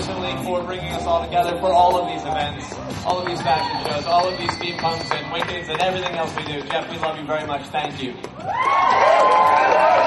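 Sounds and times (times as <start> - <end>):
speech: 0.2 - 10.0
crowd cheering and clapping: 2.6 - 7.1, 8.4 - 10.0.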